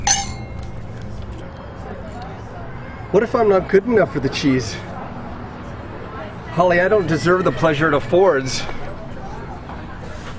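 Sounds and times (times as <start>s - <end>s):
glasses clinking in a toast: 0.0s - 0.9s
speech: 3.1s - 4.9s, 6.6s - 8.8s.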